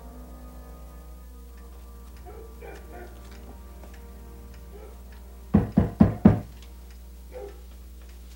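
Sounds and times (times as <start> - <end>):
knocking on a wooden door: 5.5 - 6.5.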